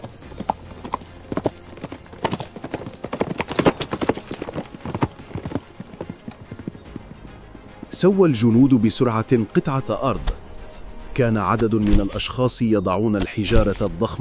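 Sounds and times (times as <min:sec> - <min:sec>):
black horse with a rider galloping up a hill: 0:00.0 - 0:08.0
speech: 0:08.0 - 0:10.4, 0:11.2 - 0:14.1.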